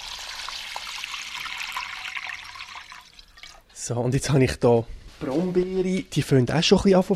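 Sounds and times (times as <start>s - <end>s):
water pouring into a glass bowl: 0.0s - 3.7s
speech: 3.8s - 7.1s.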